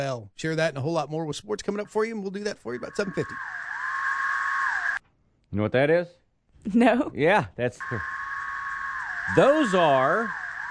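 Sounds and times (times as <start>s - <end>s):
speech: 0.0s - 3.7s, 5.5s - 8.2s, 9.3s - 10.4s
periodical cicada chorus droning: 2.4s - 5.0s, 7.8s - 10.6s.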